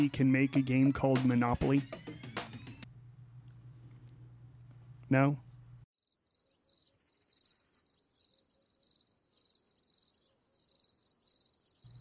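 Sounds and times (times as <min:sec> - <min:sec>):
speech: 0:00.0 - 0:02.0, 0:05.1 - 0:05.4
crickets chirping: 0:06.0 - 0:12.0.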